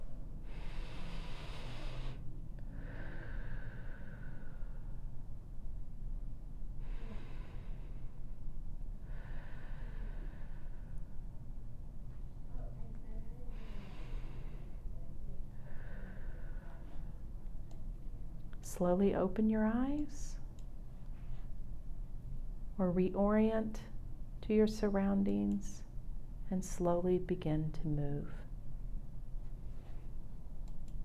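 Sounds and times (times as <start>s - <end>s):
faint steady low hum: 0.0s - 31.0s
slow deep breaths during a guided breathing exercise: 0.4s - 5.4s, 6.8s - 11.6s, 13.4s - 17.3s
speech: 18.7s - 20.4s, 22.8s - 23.9s, 24.5s - 25.9s, 26.5s - 28.4s.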